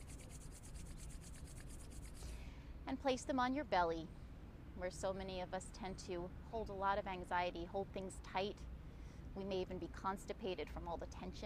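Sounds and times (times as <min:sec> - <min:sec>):
hands rubbing together briskly to warm them: 0:00.0 - 0:02.3
speech: 0:02.9 - 0:04.2, 0:04.8 - 0:08.7, 0:09.4 - 0:11.4.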